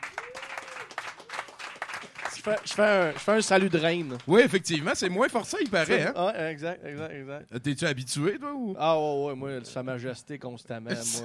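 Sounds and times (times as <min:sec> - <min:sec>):
audience applause: 0:00.0 - 0:05.0
speech: 0:02.4 - 0:11.2.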